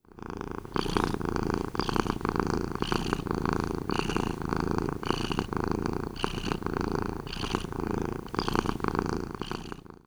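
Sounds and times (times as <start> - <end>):
cat purring: 0.0 - 10.0.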